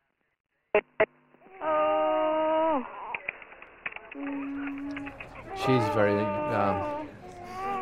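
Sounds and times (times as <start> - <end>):
speech: 0.7 - 2.0, 4.2 - 4.7, 5.6 - 7.0
young child wailing: 1.5 - 3.0, 4.3 - 7.7.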